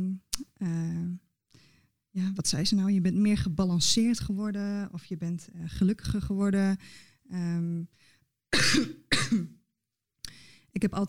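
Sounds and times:
speech: 2.2 - 9.6, 10.8 - 11.0
person clearing throat: 8.6 - 9.6.

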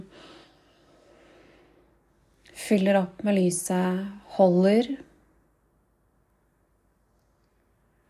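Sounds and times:
long deep inhale through the nose during guided breathing meditation: 0.0 - 2.0
speech: 2.7 - 5.1.

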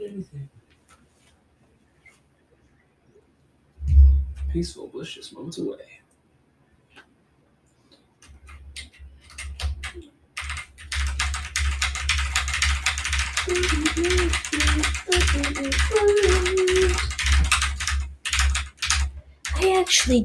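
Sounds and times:
speech: 4.6 - 6.0, 13.5 - 17.1, 19.8 - 20.2
typing on mechanical keyboard with white switches and white keycaps: 8.2 - 20.2.

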